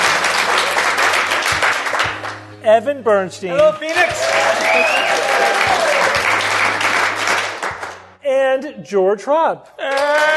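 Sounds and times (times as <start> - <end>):
live audience applauding in Phoenix: 0.0 - 2.4, 3.6 - 8.1
speech: 2.7 - 6.3, 8.3 - 10.3.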